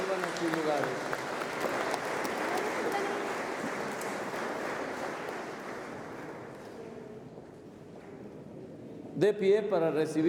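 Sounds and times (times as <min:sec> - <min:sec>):
large crowd applauding in a reverberant room: 0:00.0 - 0:06.6
speech: 0:09.2 - 0:10.2.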